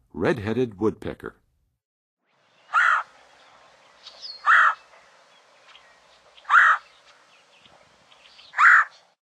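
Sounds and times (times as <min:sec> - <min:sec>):
Red-headed Woodpecker call in Western USA: 0:02.6 - 0:09.1.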